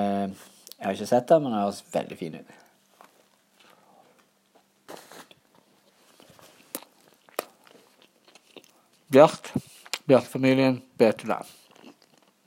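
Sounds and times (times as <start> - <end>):
speech: 0.0 - 2.6, 9.1 - 11.6
soft rustling: 2.6 - 8.0
chewing and crunching of food: 2.6 - 10.1, 11.4 - 12.4.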